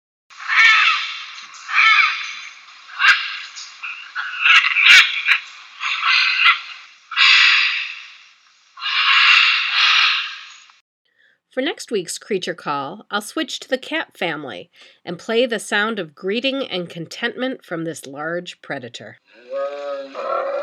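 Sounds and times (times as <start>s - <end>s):
scarlet macaws squawking with harsh raspy screeches: 0.4s - 8.2s, 8.8s - 10.8s, 19.4s - 20.6s
speech: 11.6s - 19.5s.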